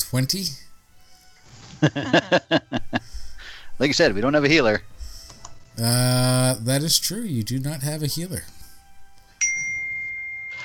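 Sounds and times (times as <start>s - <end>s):
speech: 0.1s - 0.6s, 1.8s - 3.1s, 3.8s - 4.9s, 5.8s - 8.6s
laughter: 1.8s - 3.0s
electronic phone notification ding: 9.4s - 10.6s.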